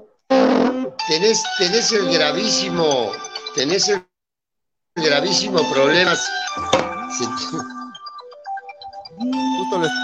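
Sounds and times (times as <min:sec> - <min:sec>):
speech: 0:00.6 - 0:04.1, 0:05.0 - 0:07.8, 0:09.2 - 0:10.0
phone ringtone for an incoming call with bright electronic melody: 0:05.8 - 0:10.0.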